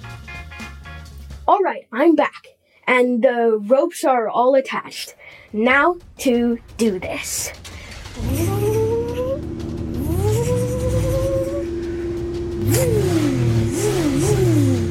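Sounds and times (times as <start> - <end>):
speech: 1.5 - 8.7, 12.7 - 13.0
truck engine straining and revving while pulling a heavy load: 6.0 - 14.9.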